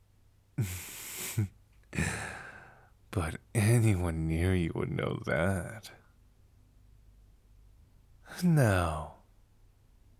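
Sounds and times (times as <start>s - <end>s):
speech: 0.6s - 2.1s, 3.2s - 6.0s, 8.3s - 9.2s
heavy ragged desperate breathing: 2.0s - 2.9s.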